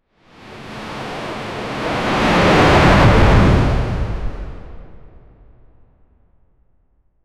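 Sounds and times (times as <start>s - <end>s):
sudden deep whoosh of ocean: 0.8s - 5.5s.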